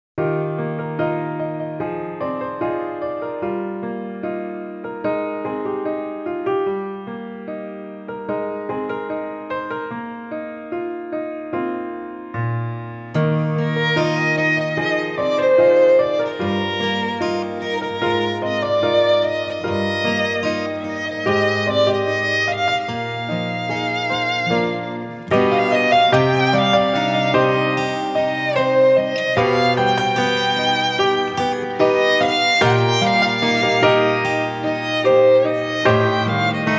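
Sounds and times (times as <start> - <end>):
piano: 0.2 - 36.7
guitar: 13.1 - 36.7
violin: 13.2 - 36.7.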